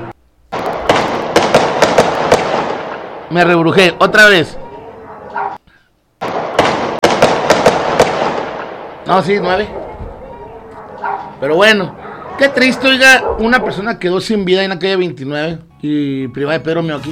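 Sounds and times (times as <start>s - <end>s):
steady hiss of noise: 0.0s - 14.6s
rapid series of sharp gunshots: 0.5s - 3.8s, 6.2s - 9.6s
speech: 3.3s - 4.6s, 9.1s - 9.8s, 11.4s - 17.1s.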